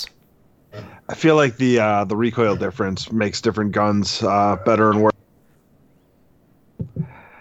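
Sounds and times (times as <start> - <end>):
pet coughing up: 0.7 - 1.0
speech: 0.7 - 5.2.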